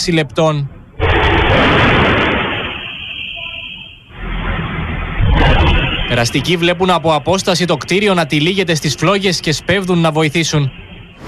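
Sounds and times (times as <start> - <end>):
speech: 0.0 - 2.0, 6.1 - 11.2
loud distorted explosion in apartment building ground floor: 1.0 - 3.2, 4.2 - 6.6
second heavy booming blast: 1.0 - 3.2, 4.4 - 6.6.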